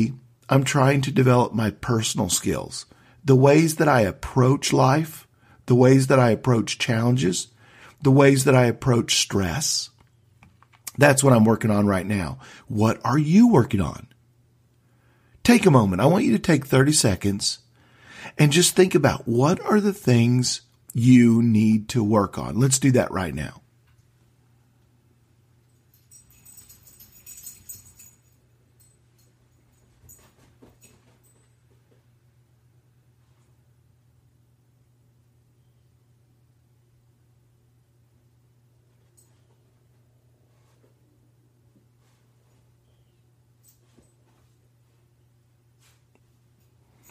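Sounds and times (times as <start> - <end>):
speech: 0.0 - 9.9, 11.0 - 14.1, 15.4 - 17.6, 18.2 - 23.6
steady low electrical hum: 0.0 - 47.1
metallic clinks: 25.6 - 32.0, 42.8 - 44.5, 46.5 - 47.1
dog's chain jingling: 25.7 - 31.5.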